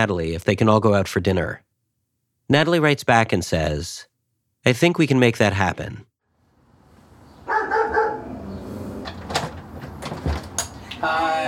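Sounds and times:
speech: 0.0 - 1.7, 2.5 - 6.1
dog barking: 7.4 - 8.4
clattering and knocking: 9.0 - 10.8.

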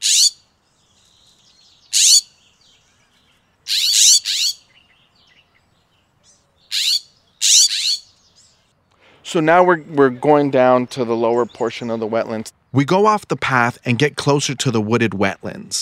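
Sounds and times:
scrub jay calling: 0.0 - 0.4, 1.7 - 3.0, 3.6 - 4.9, 6.6 - 8.4
faint chatter of other birds: 0.0 - 12.8
speech: 9.3 - 15.8.

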